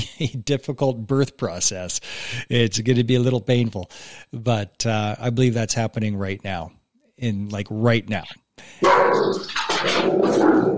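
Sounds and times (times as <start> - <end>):
speech: 0.2 - 10.7
several dogs barking and yipping: 8.8 - 10.7.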